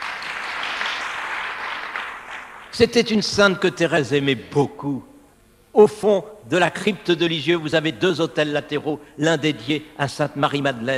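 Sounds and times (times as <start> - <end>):
crowd applause for audience members celebrating their feast day: 0.0 - 2.8
speech: 2.8 - 5.1, 5.8 - 10.9.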